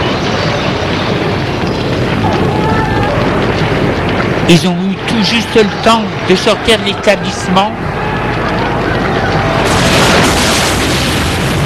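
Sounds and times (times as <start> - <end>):
massive explosion rumbling: 0.0 - 11.6
speech: 4.5 - 8.0.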